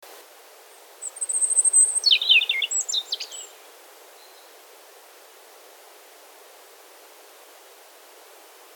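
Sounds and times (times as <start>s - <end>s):
faint background hiss: 0.0s - 8.7s
European robin whistling and twittering: 1.0s - 3.5s.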